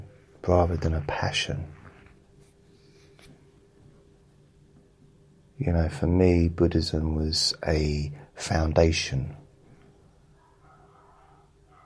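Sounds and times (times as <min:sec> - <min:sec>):
steady low hum: 0:00.0 - 0:11.8
speech: 0:00.4 - 0:01.8, 0:05.6 - 0:09.4
several dogs barking in the distance: 0:10.3 - 0:11.8.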